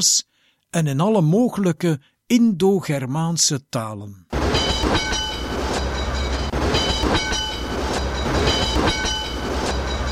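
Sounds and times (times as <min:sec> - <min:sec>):
speech: 0:00.0 - 0:05.1
electric tram in Colombo rolling along its rails: 0:04.3 - 0:10.1.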